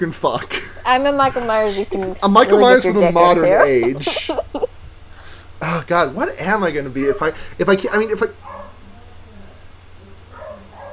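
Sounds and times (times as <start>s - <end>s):
speech: 0.0s - 4.7s, 5.6s - 8.5s
steady low hum: 0.0s - 10.9s
laughter: 0.5s - 4.8s
dogs barking from another room: 8.4s - 8.8s, 10.2s - 10.9s.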